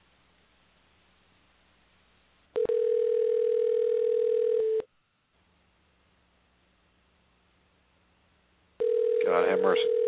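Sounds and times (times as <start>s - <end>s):
telephone dial tone while a call is being redialed: 2.6s - 4.9s, 8.8s - 10.0s.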